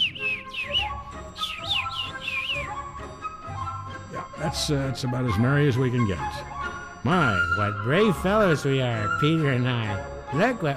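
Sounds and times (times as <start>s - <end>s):
small bird chirping: 0.0s - 3.0s
speech: 4.5s - 10.7s.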